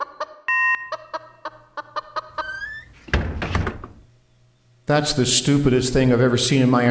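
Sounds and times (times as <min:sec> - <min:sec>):
brief electronic beep: 0:00.0 - 0:01.1
chicken clucking: 0:00.0 - 0:02.7
chicken squawking: 0:00.9 - 0:03.0
speech: 0:04.9 - 0:06.9.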